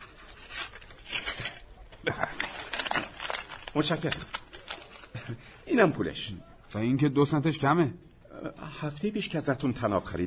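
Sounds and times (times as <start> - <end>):
paper rustling and crinkling as nails are wrapped: 0.0 - 5.7
speech: 3.8 - 4.4, 5.3 - 10.2.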